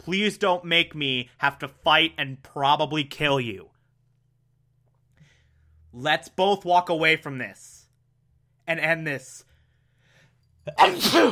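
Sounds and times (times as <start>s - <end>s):
speech: 0.0s - 3.7s, 6.0s - 7.8s, 8.7s - 9.5s, 10.6s - 11.3s
human sneeze: 10.7s - 11.3s.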